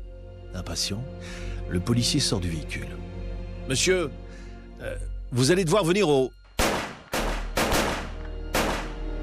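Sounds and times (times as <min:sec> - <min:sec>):
speech: 0:00.5 - 0:06.4
gunshots fired at a man on a street in broad daylight: 0:06.6 - 0:09.1.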